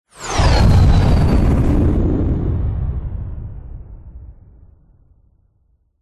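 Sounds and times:
fighter jet plane passing: 0.1s - 3.8s
fighter jet bursting into flames: 0.1s - 5.0s.

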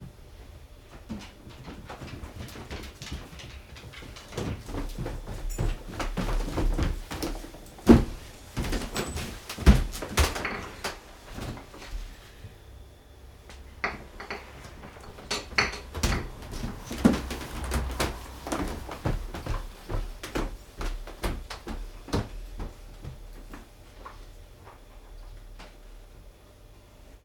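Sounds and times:
footsteps on wooden floor walking upstairs and downstairs inside a room: 0.9s - 10.6s, 14.7s - 24.9s.

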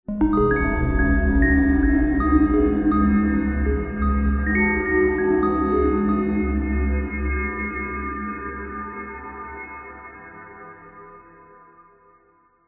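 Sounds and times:
ghostly ominous haunted musical chime riff: 0.1s - 7.8s.

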